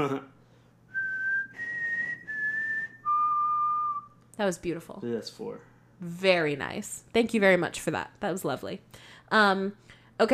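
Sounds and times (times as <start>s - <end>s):
speech: 0.0s - 0.4s, 4.4s - 10.3s
person whistling a four-note tune: 0.9s - 4.1s.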